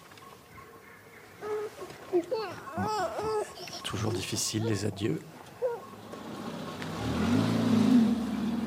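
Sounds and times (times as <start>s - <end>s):
speech: 2.2s - 5.4s
car engine rumbling: 5.3s - 8.6s
car pulling off and driving away: 5.8s - 8.6s.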